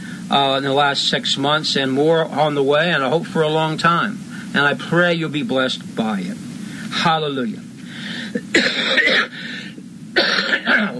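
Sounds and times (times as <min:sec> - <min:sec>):
speech: 0:00.3 - 0:07.6, 0:08.4 - 0:09.0
harsh raspy coughs: 0:08.3 - 0:10.9.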